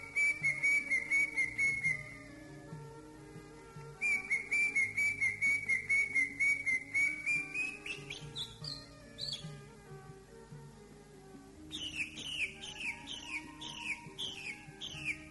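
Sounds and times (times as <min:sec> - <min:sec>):
greater green leafbird song: 0:00.0 - 0:02.3, 0:04.0 - 0:09.6, 0:11.7 - 0:15.2
background noise: 0:00.0 - 0:15.2.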